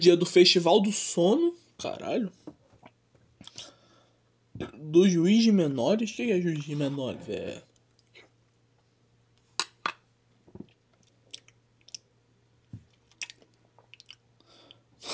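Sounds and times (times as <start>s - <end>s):
speech: 0.0s - 2.5s, 4.6s - 7.7s
faint steady hum: 0.0s - 15.1s
person eating ice cream with wet smacks and slurps: 10.7s - 12.1s, 12.9s - 14.2s.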